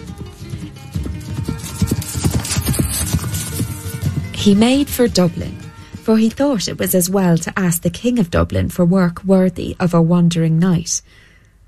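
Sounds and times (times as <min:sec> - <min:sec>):
horse hooves galloping: 0:00.0 - 0:08.2
speech: 0:04.4 - 0:11.2.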